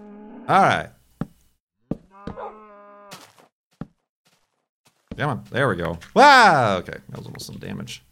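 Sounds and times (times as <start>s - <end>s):
speech: 0.5s - 1.0s, 5.2s - 8.1s
cow mooing: 2.0s - 3.2s.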